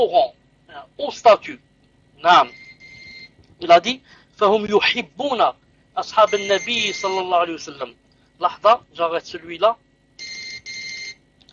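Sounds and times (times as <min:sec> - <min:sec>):
speech: 0:00.0 - 0:02.6, 0:03.6 - 0:09.8
mobile phone ringing during a religious lesson: 0:02.5 - 0:03.3, 0:06.2 - 0:07.3, 0:10.2 - 0:11.2.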